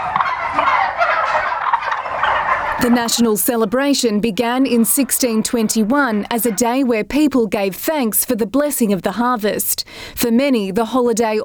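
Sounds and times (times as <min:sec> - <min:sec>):
turkey gobbling: 0:00.0 - 0:07.2
speech: 0:02.8 - 0:11.4.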